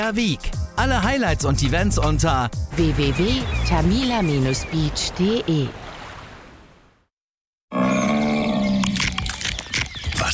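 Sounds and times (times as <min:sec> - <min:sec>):
speech: 0:00.0 - 0:05.8
large brown bear chewing and cracking nuts: 0:08.8 - 0:10.2.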